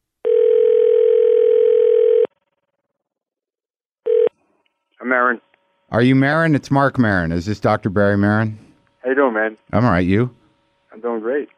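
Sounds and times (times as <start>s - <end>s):
electronic telephone dial tone: 0.2s - 2.9s, 4.1s - 4.4s
speech: 5.1s - 10.4s, 11.0s - 11.5s.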